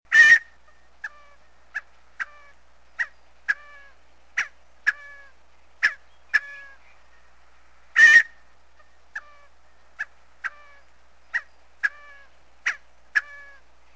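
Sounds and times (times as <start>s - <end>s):
Scaled Quail calling: 0.1s - 6.9s, 7.9s - 13.7s.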